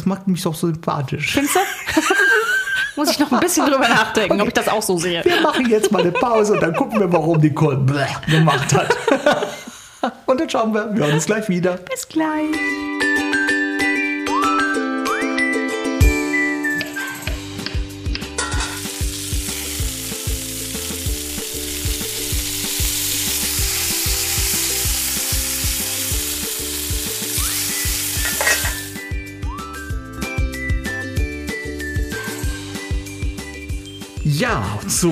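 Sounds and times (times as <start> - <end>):
speech: 0.0 - 2.2, 3.0 - 13.0
laughter: 1.4 - 9.7, 11.0 - 11.4
music playing: 12.5 - 35.0
zucchini, diced ham and batter sizzling in a pan: 18.4 - 29.2, 31.6 - 33.9.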